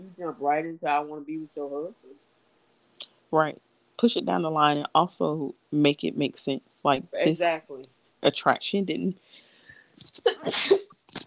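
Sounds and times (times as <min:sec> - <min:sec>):
speech: 0:00.2 - 0:02.3, 0:03.3 - 0:09.4, 0:10.0 - 0:10.9
person sneezing: 0:10.3 - 0:11.0.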